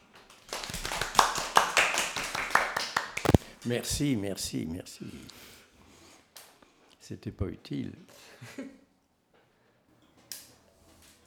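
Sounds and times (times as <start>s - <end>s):
audience applauding: 0.5s - 3.4s
speech: 3.6s - 5.5s, 7.1s - 8.8s.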